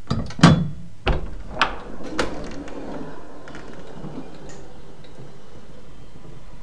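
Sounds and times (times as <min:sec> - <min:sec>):
button-operated automatic door opening and closing with mechanical clunks: 0:00.4 - 0:03.1
low rumble: 0:01.0 - 0:06.6.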